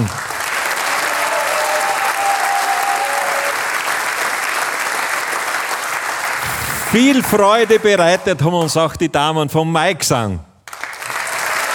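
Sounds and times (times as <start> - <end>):
sizable audience applauding: 0.0 - 6.5, 10.7 - 11.7
speech: 6.9 - 10.5.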